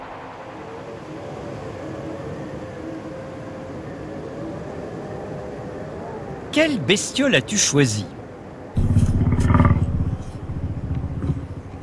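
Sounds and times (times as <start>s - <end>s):
speech: 6.6s - 8.2s
woolly mammoth deep rumbling roar-like bellow: 8.8s - 11.8s.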